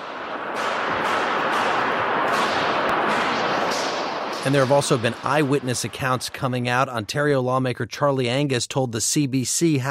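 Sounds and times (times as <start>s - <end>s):
gunshots inside the large halls of Canada's Parliament: 0.0s - 7.4s
speech: 4.4s - 9.8s.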